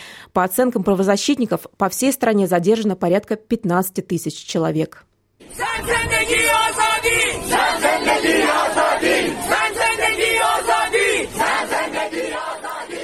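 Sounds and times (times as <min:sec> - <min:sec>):
speech: 0:00.4 - 0:05.1
large protest crowd in Iran chanting a slogan: 0:05.4 - 0:13.0
protesters shouting: 0:05.4 - 0:13.0.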